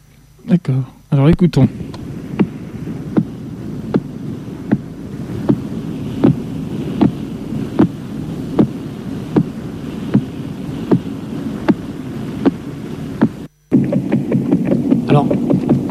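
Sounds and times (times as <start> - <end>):
steady hiss and hum: 0.0 - 15.8
speech: 0.5 - 1.9
rough noise: 1.7 - 15.8
radio signal from pulsar PSR 0329+54 rendered as sharp evenly spaced ticks: 1.9 - 15.8.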